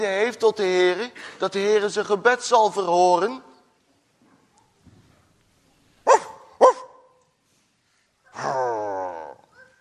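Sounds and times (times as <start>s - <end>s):
speech: 0.0s - 3.5s
police dog barking: 6.0s - 7.2s, 9.5s - 9.8s.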